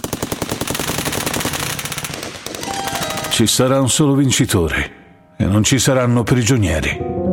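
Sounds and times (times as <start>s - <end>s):
machine gun fire: 0.0s - 3.8s
speech: 3.4s - 7.2s.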